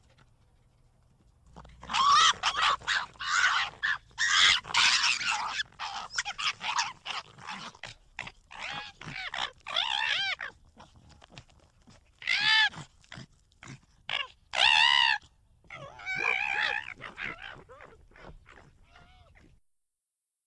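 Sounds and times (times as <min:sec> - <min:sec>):
fox giving high harmonic whining calls: 0:01.6 - 0:10.6, 0:12.2 - 0:12.8, 0:14.1 - 0:19.5.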